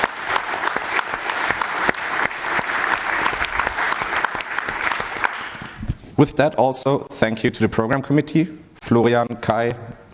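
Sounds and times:
audience applause with many hands clapping: 0:00.0 - 0:05.9
speech: 0:06.2 - 0:10.1.

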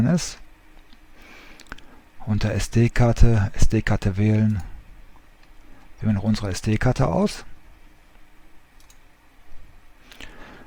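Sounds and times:
speech: 0:00.0 - 0:00.4, 0:02.3 - 0:04.7, 0:06.0 - 0:07.5
quiet hiss: 0:00.0 - 0:10.6
computer mouse clicks: 0:08.8 - 0:09.0.

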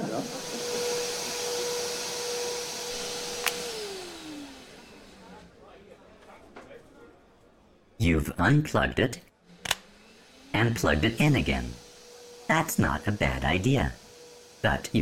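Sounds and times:
vacuum cleaner running: 0:00.0 - 0:05.5, 0:09.4 - 0:15.0
speech: 0:08.0 - 0:09.3, 0:10.6 - 0:11.8, 0:12.5 - 0:14.0, 0:14.6 - 0:15.0.

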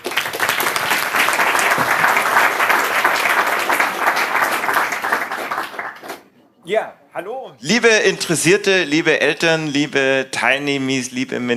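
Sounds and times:
audience applause at an evening event: 0:00.0 - 0:06.3
speech: 0:06.7 - 0:11.5.

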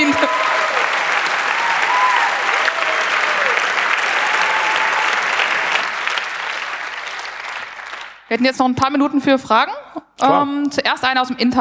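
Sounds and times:
large audience applause: 0:00.0 - 0:08.3
speech: 0:08.4 - 0:11.5.

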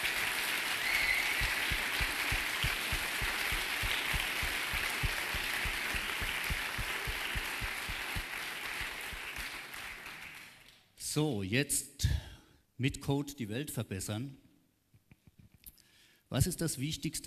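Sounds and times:
crowd applauding the organizing team of an event: 0:00.0 - 0:10.8
speech: 0:11.2 - 0:11.9, 0:12.8 - 0:14.4, 0:16.3 - 0:17.2.

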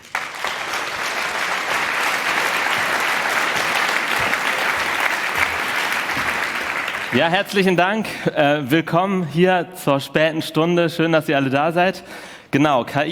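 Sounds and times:
audience applause from a sizable crowd: 0:00.0 - 0:07.7
speech: 0:07.1 - 0:13.0.

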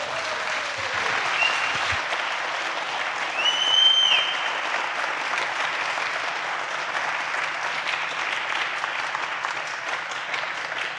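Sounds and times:
large crowd applauding at an event: 0:00.0 - 0:10.9
whistles from a crowd: 0:01.3 - 0:02.0, 0:03.3 - 0:04.6.

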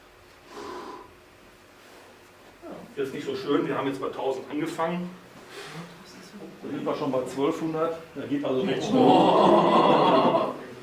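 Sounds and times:
quiet hiss: 0:00.0 - 0:08.5
breathy exhale onto a CO2 sensor: 0:00.5 - 0:01.2, 0:05.5 - 0:05.9
speech: 0:03.0 - 0:10.6
laughter: 0:08.6 - 0:10.7.

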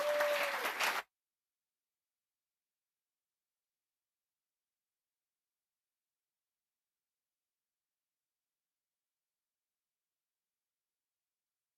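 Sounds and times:
thunderous audience applause: 0:00.0 - 0:01.1.

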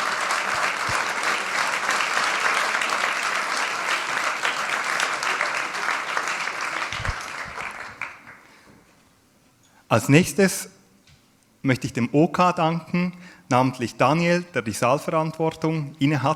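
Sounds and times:
room full of people applauding: 0:00.0 - 0:08.5
speech: 0:09.9 - 0:10.8, 0:11.6 - 0:16.3.

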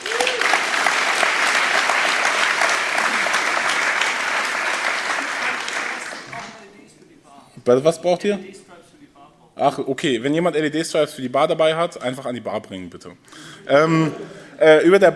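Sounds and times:
audience applauding: 0:00.0 - 0:06.7
speech: 0:07.7 - 0:08.6, 0:09.6 - 0:15.1.

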